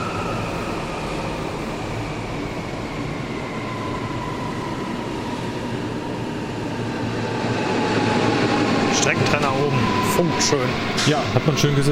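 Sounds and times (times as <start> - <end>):
S8 S-Bahn commuter train from Wiesbaden pulling into station: 0.0 - 11.9
speech: 10.2 - 11.9.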